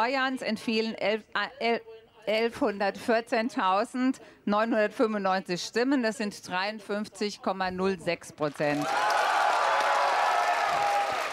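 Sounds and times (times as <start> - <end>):
speech: 0.0 - 9.1
crowd clapping at party headquarters for election winners: 8.5 - 11.3.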